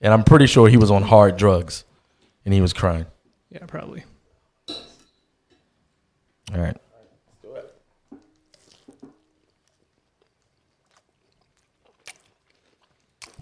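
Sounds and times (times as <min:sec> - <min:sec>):
speech: 0:00.0 - 0:04.1, 0:04.7 - 0:04.9, 0:06.5 - 0:06.8
chewing and smacking into a microphone: 0:08.1 - 0:13.4.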